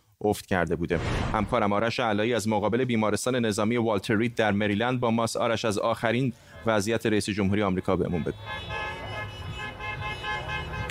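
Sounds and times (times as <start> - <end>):
speech: 0.2 - 8.8
car horns honking from several vehicles: 8.1 - 10.9.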